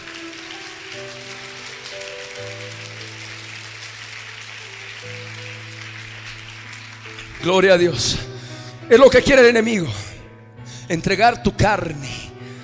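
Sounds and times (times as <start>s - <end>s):
audience clapping: 0.0s - 8.4s
speech: 7.4s - 8.3s, 8.9s - 10.1s, 10.9s - 12.2s.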